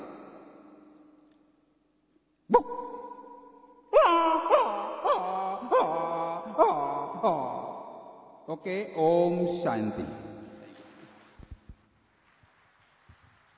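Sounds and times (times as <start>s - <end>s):
human voice imitating a dog crying after being hit by a stone: 4.0s - 7.8s
speech: 8.6s - 10.2s.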